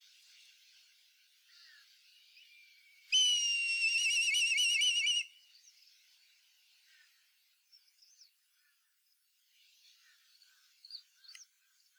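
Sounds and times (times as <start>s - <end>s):
black kite quivering whistled call: 3.1s - 5.3s.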